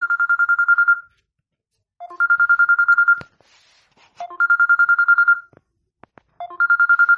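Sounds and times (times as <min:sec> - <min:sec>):
Samsung J2 basic bell ringtone: 0:00.0 - 0:01.1, 0:02.0 - 0:03.3, 0:04.2 - 0:05.5, 0:06.4 - 0:07.1.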